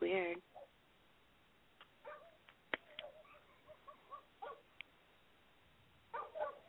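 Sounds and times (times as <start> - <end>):
distant dogs or coyotes barking and yipping: 0.4 - 0.8, 2.0 - 4.8, 6.1 - 6.6.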